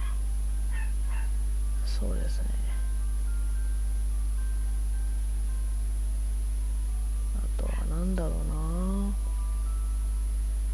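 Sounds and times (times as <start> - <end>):
dog barks: 0.0 - 1.4
steady low electrical hum: 0.0 - 10.7
speech: 2.0 - 2.8.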